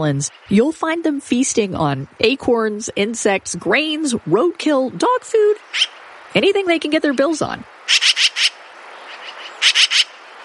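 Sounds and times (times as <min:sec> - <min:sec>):
speech: 0:00.0 - 0:08.5
Yellow-billed Magpie chattering call: 0:05.6 - 0:06.0, 0:07.9 - 0:10.2.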